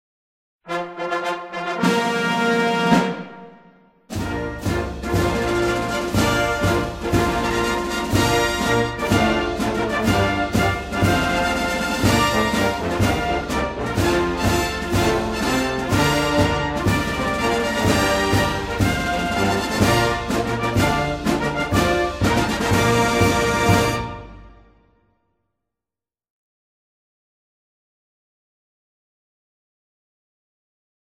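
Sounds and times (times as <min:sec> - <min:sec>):
ceremonial drum ruffles and bugle flourishes with a military march: 0:00.7 - 0:24.8.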